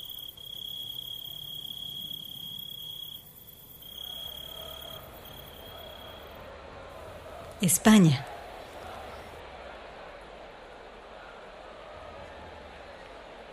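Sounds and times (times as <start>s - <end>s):
dense chorus of cicadas buzzing on a summer afternoon in Spain: 0.0s - 6.4s
faint outdoor hush: 0.0s - 13.5s
speech: 7.6s - 8.3s.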